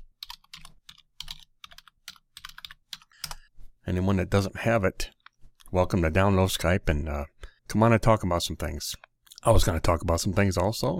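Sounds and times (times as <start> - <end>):
typing on a computer keyboard: 0.0 - 3.4
speech: 3.9 - 10.9.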